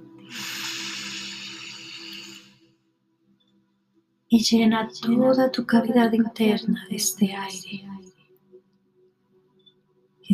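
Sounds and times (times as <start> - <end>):
deep slow exhale during a guided relaxation exercise: 0.3 - 2.7
speech: 4.3 - 8.0.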